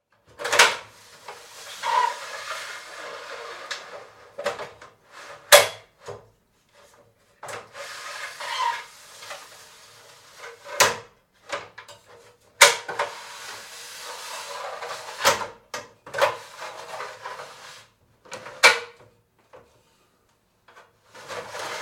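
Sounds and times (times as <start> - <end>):
aluminum light loft ladder sliding: 0.3 - 5.7, 6.8 - 11.0, 12.0 - 18.7, 21.0 - 21.7.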